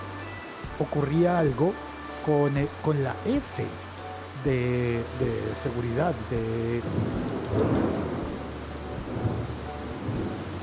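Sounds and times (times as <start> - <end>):
speech: 0.8 - 8.1
low rolling thunder rumbling: 6.8 - 10.6.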